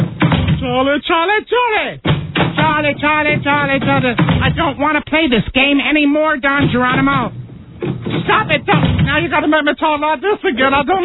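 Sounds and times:
door banging shut: 0:00.0 - 0:00.8, 0:02.0 - 0:04.9, 0:06.5 - 0:09.5
speech: 0:00.8 - 0:07.4, 0:08.1 - 0:11.0.

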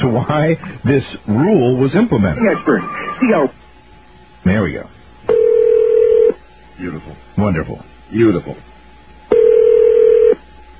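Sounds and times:
speech: 0:00.1 - 0:03.6, 0:04.4 - 0:05.0, 0:06.8 - 0:08.7
electronic ring of an outgoing phone call: 0:05.3 - 0:06.4, 0:09.3 - 0:10.4.

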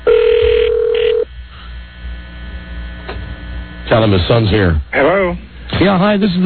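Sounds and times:
telephone ringing with a single electronic tone: 0:00.0 - 0:01.3
faint hum: 0:00.0 - 0:06.4
speech: 0:03.9 - 0:06.4.

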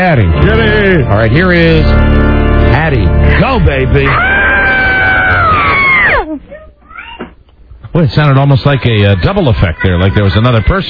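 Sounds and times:
speech: 0:00.0 - 0:04.3, 0:08.0 - 0:10.8
Girl Scout leader screaming loudly from inside a closet: 0:04.0 - 0:06.3.

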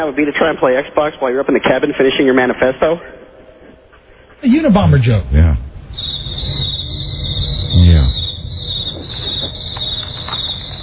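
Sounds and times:
speech: 0:00.0 - 0:03.2, 0:04.4 - 0:05.7
insects chirping: 0:03.0 - 0:10.8.

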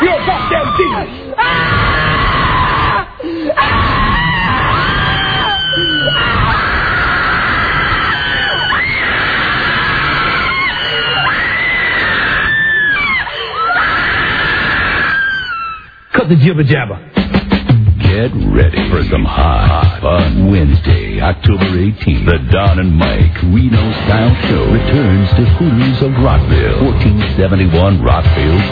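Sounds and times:
several people screaming: 0:00.0 - 0:16.1
speech: 0:16.3 - 0:17.2, 0:18.2 - 0:28.7.

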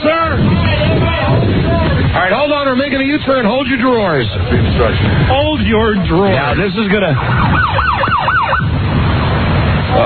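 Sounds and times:
steady low engine rumble: 0:00.0 - 0:10.0
speech: 0:02.7 - 0:08.1
police car siren wailing while pulling a car over: 0:05.5 - 0:09.0.

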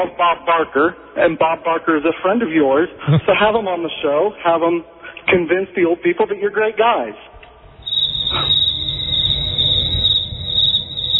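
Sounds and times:
speech: 0:00.0 - 0:07.3, 0:08.3 - 0:08.6
crickets chirping: 0:07.6 - 0:11.1.

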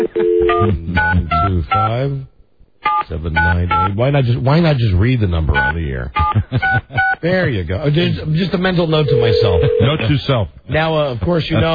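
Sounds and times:
speech: 0:00.0 - 0:02.3, 0:03.1 - 0:11.7
telephone dialing tones as electronic beeps: 0:09.1 - 0:09.9.

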